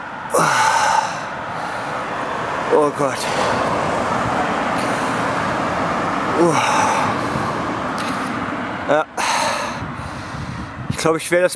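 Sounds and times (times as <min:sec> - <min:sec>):
bus engine drone: 0:00.0 - 0:11.0
road rumble: 0:00.0 - 0:11.5
speech: 0:00.3 - 0:00.7, 0:02.7 - 0:03.6, 0:06.4 - 0:06.8, 0:08.9 - 0:09.1, 0:11.0 - 0:11.5
person exclaiming: 0:00.3 - 0:01.3, 0:06.4 - 0:07.0.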